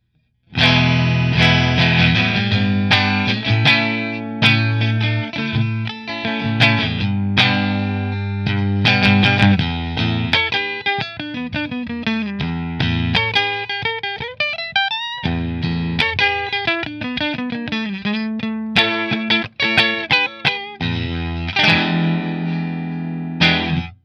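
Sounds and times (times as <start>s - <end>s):
Fender Strat guitar in Kinman position 1: 0.0s - 24.0s.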